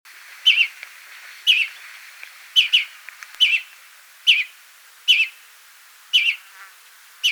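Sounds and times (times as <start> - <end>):
greenfinch Chloris chloris giving clipped twittering call notes: 0.4 - 0.8, 1.5 - 1.8, 2.6 - 3.7, 4.3 - 5.4, 6.1 - 6.5.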